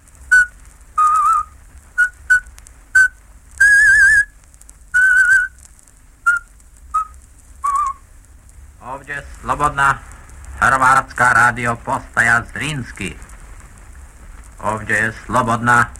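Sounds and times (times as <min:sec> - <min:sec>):
person whistling a folk-like melody: 0:00.3 - 0:04.3, 0:05.0 - 0:05.6, 0:06.3 - 0:08.0
speech: 0:09.0 - 0:13.3, 0:14.6 - 0:15.9.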